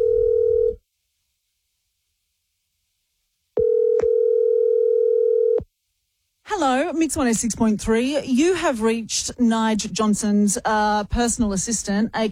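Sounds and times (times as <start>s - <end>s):
telephone line tone after dialing a number: 0.0s - 0.8s, 3.6s - 5.6s
speech: 6.6s - 12.3s.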